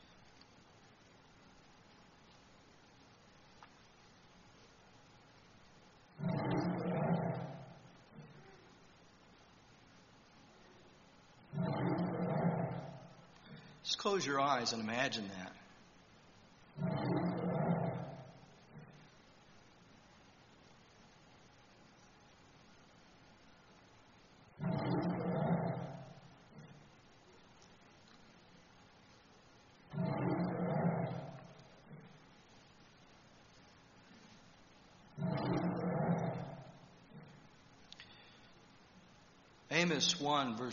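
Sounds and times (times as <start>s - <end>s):
quiet hiss: 0.0s - 40.7s
lion roaring: 6.2s - 8.6s, 11.5s - 13.6s, 16.8s - 19.0s, 24.6s - 26.8s, 29.9s - 32.2s, 35.2s - 37.4s
speech: 14.0s - 15.6s, 39.9s - 40.7s.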